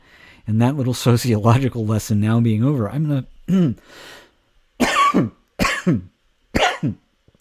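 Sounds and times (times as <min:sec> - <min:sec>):
speech: 0:00.5 - 0:04.2, 0:05.1 - 0:07.0
harsh rasping coughs: 0:04.8 - 0:07.1.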